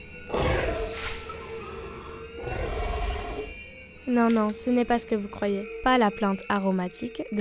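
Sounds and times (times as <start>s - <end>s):
huge serpent-like basilisk roaring with a harsh hiss: 0.3s - 3.5s
speech: 4.1s - 7.3s.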